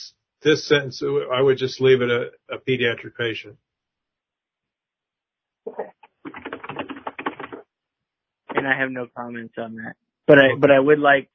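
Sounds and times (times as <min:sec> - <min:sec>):
speech: 0:00.0 - 0:03.7, 0:08.6 - 0:11.3
rapid keyboard typing: 0:06.2 - 0:07.6.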